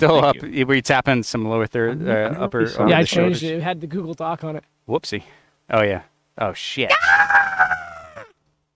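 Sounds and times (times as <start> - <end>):
speech: 0.0 - 7.6
person imitating a bird call: 6.9 - 8.4.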